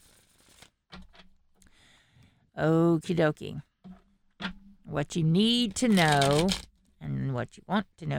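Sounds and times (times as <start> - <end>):
speech: 2.6 - 3.7, 4.9 - 6.7, 7.4 - 8.1
deck of tarot cards being shuffled: 5.8 - 6.7.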